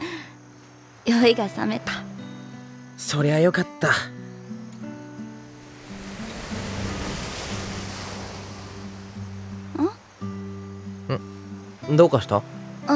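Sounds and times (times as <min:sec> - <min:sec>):
speech: 0:01.1 - 0:02.0, 0:03.0 - 0:04.2, 0:11.9 - 0:12.9
ocean surf washing ashore: 0:05.3 - 0:11.0.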